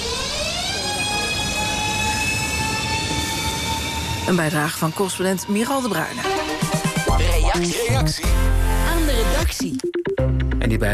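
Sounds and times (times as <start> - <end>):
commuter passenger train rumbling in Madrid: 0.0 - 6.4
high whining tones of commuter train: 0.0 - 9.4
speech: 4.3 - 6.7, 7.6 - 10.9.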